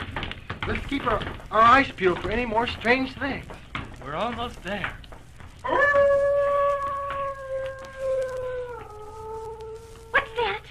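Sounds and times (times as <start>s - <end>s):
speech: 0.7s - 5.0s
dog howling like a wolf: 5.6s - 10.6s.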